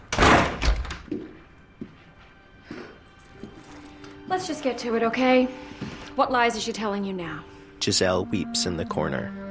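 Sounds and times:
door slamming shut: 0:00.0 - 0:01.3
speech: 0:04.3 - 0:09.4.

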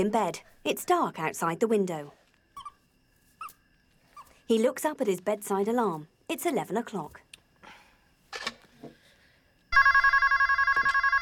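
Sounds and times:
speech: 0:00.0 - 0:02.2, 0:04.5 - 0:07.2
bedside telephone ringing with electronic trill: 0:09.7 - 0:11.2.

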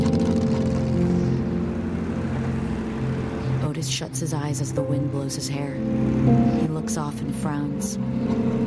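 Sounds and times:
motorcycle engine rumbling as it pulls away: 0:00.0 - 0:08.6
speech: 0:03.8 - 0:08.6.

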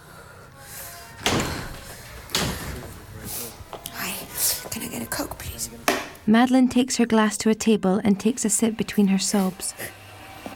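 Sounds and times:
door opening thumps: 0:01.2 - 0:03.0
speech: 0:06.3 - 0:10.0.

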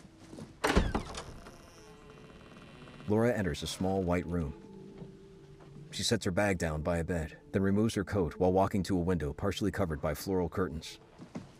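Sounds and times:
door at the top of a narrow staircase being pushed open: 0:00.6 - 0:01.8
speech: 0:03.1 - 0:04.6, 0:06.0 - 0:11.0.

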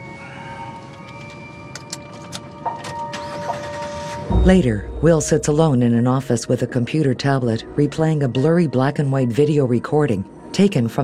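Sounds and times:
seatbelt clicks inside a vehicle: 0:01.0 - 0:03.0
car engine starting and rumbling: 0:02.9 - 0:05.9
speech: 0:04.4 - 0:11.0.

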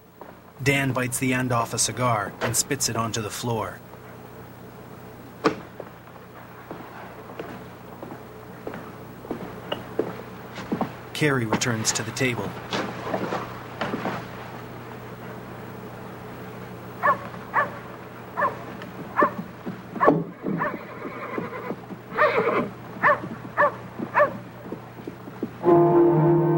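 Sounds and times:
low steady hum: 0:00.0 - 0:26.5
speech: 0:00.6 - 0:03.9, 0:11.2 - 0:12.9
horses ridden along a main street whinnying and neighing: 0:20.0 - 0:24.4.

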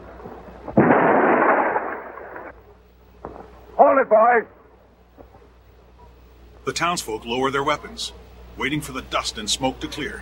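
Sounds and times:
dynamite charges exploding in a mountain pass, set off by plunger detonator: 0:00.6 - 0:02.6
speech: 0:04.0 - 0:04.6, 0:06.6 - 0:10.2.

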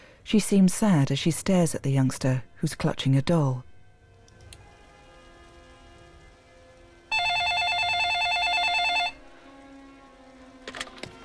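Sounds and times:
speech: 0:00.3 - 0:03.7
telephone with bright trilling electronic ring: 0:07.1 - 0:09.3.

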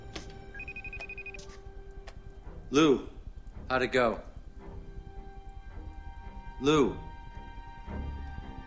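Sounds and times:
hum and hiss: 0:00.0 - 0:08.6
cell phone ringing faintly in a house: 0:00.6 - 0:01.6
speech: 0:02.7 - 0:04.3, 0:06.6 - 0:07.1.

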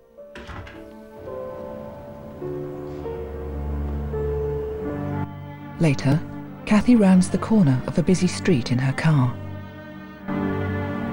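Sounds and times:
sustained music: 0:00.0 - 0:11.1
door closing thunk: 0:00.3 - 0:01.4
speech: 0:05.8 - 0:09.4.

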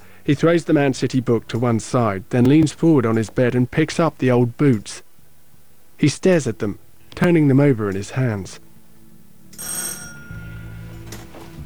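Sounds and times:
low steady hum: 0:00.0 - 0:11.6
speech: 0:00.2 - 0:05.0, 0:06.0 - 0:08.6, 0:09.6 - 0:09.9
bright metallic front doorbell ringing: 0:09.5 - 0:11.4.

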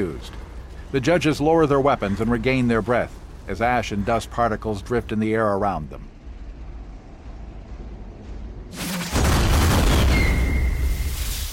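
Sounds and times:
speech: 0:00.0 - 0:06.1
loud explosions with deep rumbling boom: 0:08.7 - 0:11.5
gunfire in sharp crackling bursts: 0:08.8 - 0:10.7.

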